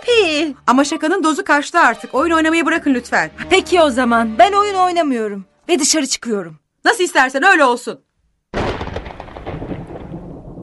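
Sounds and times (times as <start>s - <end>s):
speech: 0.3s - 8.1s
thunder crack in a thunderstorm: 8.6s - 10.6s.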